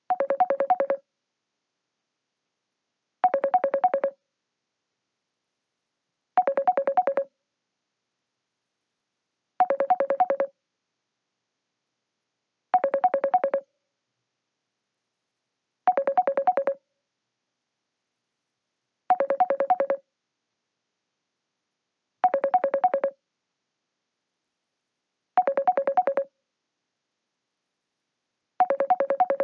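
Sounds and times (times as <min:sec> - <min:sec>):
incoming call ringtone: 0:00.2 - 0:01.0, 0:03.3 - 0:04.2, 0:06.4 - 0:07.3, 0:09.6 - 0:10.5, 0:12.8 - 0:13.6, 0:15.9 - 0:16.8, 0:19.1 - 0:20.0, 0:22.3 - 0:23.2, 0:25.4 - 0:26.3, 0:28.6 - 0:29.4.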